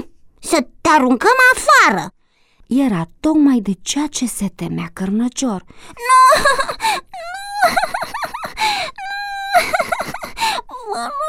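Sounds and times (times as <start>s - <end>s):
speech: 0.5s - 7.9s, 10.8s - 11.2s
dog whimpering and crying: 6.0s - 11.2s.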